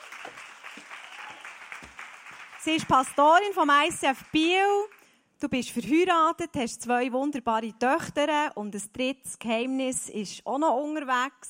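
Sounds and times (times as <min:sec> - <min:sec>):
audience applause at a church gathering: 0:00.0 - 0:05.0
speech: 0:02.6 - 0:11.4.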